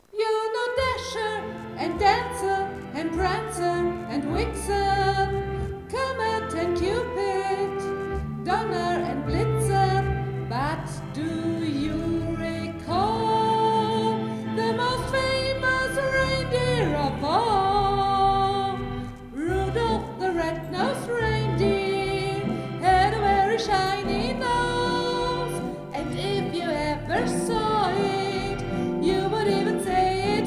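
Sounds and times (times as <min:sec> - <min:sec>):
person singing: 0:00.1 - 0:30.4
organ: 0:00.8 - 0:30.4.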